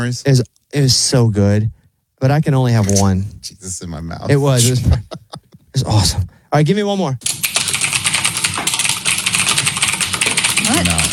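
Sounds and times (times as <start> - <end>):
speech: 0.0 - 7.4, 10.7 - 11.1
laughter: 4.3 - 5.9
typing on a mechanical keyboard: 7.2 - 11.1.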